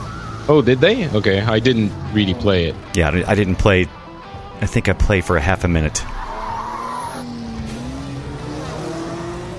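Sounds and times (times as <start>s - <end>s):
speech: 0.5s - 4.0s, 4.6s - 6.2s
race car tires squealing: 6.1s - 9.5s
loud race car engine roar: 6.8s - 9.5s.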